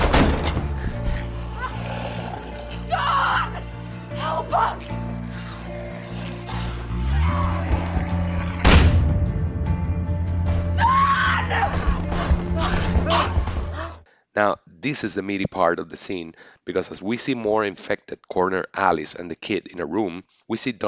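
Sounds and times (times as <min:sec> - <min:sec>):
droning soundtrack music: 0:00.0 - 0:14.0
woman screaming and yelling in a film scene: 0:02.8 - 0:05.0, 0:10.8 - 0:14.0
sharp slam: 0:08.6 - 0:09.6
speech: 0:14.4 - 0:20.8.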